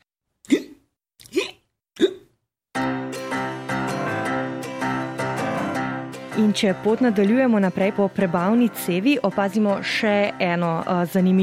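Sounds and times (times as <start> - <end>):
sharp gulping hiccups: 0.4 - 2.4
music: 2.8 - 11.4
speech: 6.4 - 11.4.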